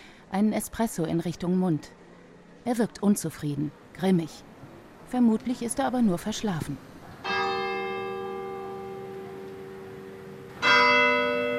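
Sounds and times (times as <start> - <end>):
faint hiss: 0.0 - 11.5
speech: 0.3 - 2.0, 2.6 - 4.5, 5.1 - 6.9
church tower clock bell striking in Maranello: 7.2 - 11.5.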